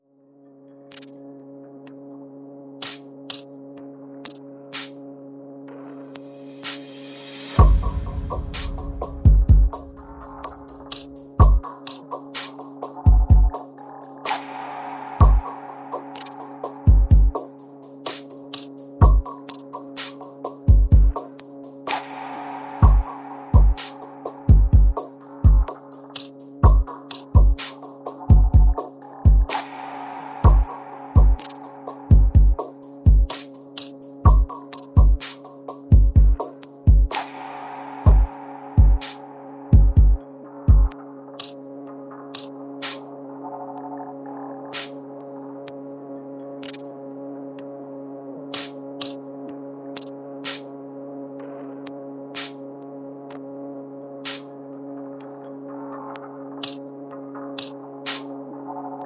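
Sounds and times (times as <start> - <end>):
percussion pads: 6.1 - 41.6, 42.3 - 43.0, 48.5 - 49.2, 50.0 - 50.7, 54.2 - 54.5, 57.6 - 58.3.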